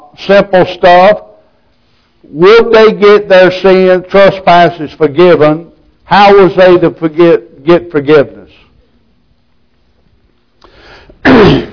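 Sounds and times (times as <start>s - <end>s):
speech: 0.2s - 1.3s, 2.2s - 8.4s
person with a bad throat problem coughing: 11.2s - 11.7s.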